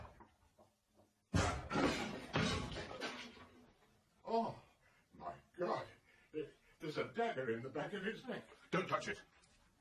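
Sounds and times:
door being forced and broken down: 1.3s - 3.6s
speech: 7.1s - 9.4s.

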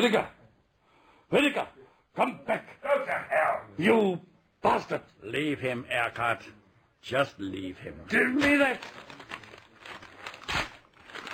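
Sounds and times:
speech: 0.0s - 0.4s, 1.3s - 9.3s
paper agreement being torn up and crumpled: 8.4s - 11.3s.

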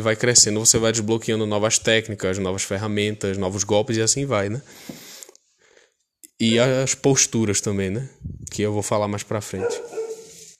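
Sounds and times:
speech: 0.0s - 5.0s, 6.4s - 10.0s
dog barking: 9.6s - 10.5s.

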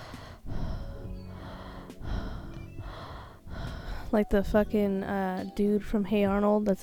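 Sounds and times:
heavy congested mouth breathing: 0.0s - 4.2s
speech: 4.1s - 6.8s.

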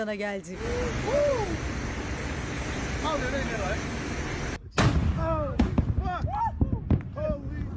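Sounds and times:
speech: 0.0s - 1.8s, 3.0s - 4.0s
deep continuous rumble of underwater volcano eruption: 0.0s - 7.7s
sharp booming explosions of underwater volcano eruption: 4.8s - 7.6s.

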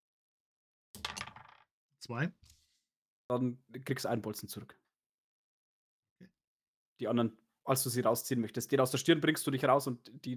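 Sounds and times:
six-sided die rolled during a tabletop role-playing game: 1.0s - 1.6s
speech: 2.0s - 2.6s, 3.3s - 4.8s, 7.0s - 10.3s.

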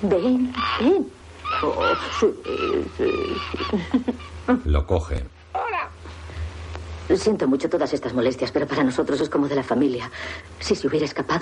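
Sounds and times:
speech: 0.0s - 5.4s, 7.1s - 11.4s
bird flying about inside a house calling in warbling cooing bursts: 0.1s - 4.4s.

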